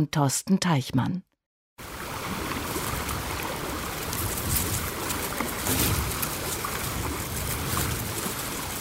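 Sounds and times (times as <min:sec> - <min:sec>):
speech: 0:00.0 - 0:02.0
Rio Grande rushing through a narrow bed at the bottom of a rock gorge: 0:01.8 - 0:08.7.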